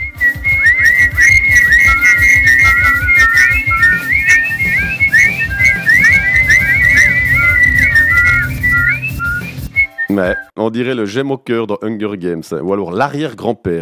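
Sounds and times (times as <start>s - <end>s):
flock of sparrows whistling and chirping on a tree branch: 0.5s - 9.6s
speech: 10.2s - 13.8s.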